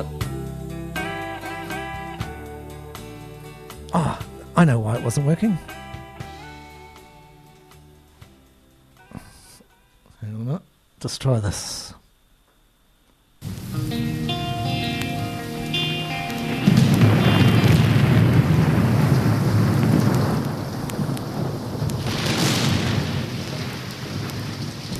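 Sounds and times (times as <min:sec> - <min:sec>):
steady hissing rain: 0:03.9 - 0:04.2, 0:13.4 - 0:24.9
speech: 0:03.9 - 0:05.8, 0:11.0 - 0:11.8
deep rolling thunder: 0:13.4 - 0:24.9.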